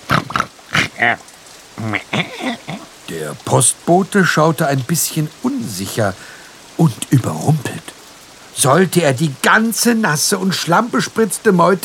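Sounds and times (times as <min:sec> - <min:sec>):
pigs grunting and snorting: 0:00.0 - 0:01.2
speech: 0:01.0 - 0:02.6, 0:03.2 - 0:07.9, 0:08.6 - 0:11.8.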